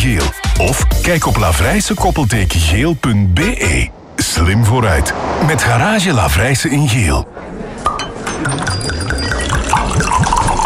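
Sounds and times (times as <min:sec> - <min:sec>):
speech: 0:00.6 - 0:07.5
glasses clinking at a wine bar: 0:07.8 - 0:10.6
drinks pouring into a glass at a wine bar: 0:08.4 - 0:10.6.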